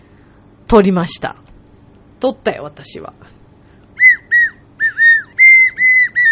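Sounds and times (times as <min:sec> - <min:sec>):
speech: 0:00.7 - 0:01.5, 0:02.2 - 0:03.4
small transparent recorder-shaped ballpoint pen blown like a toy recorder: 0:04.0 - 0:06.3.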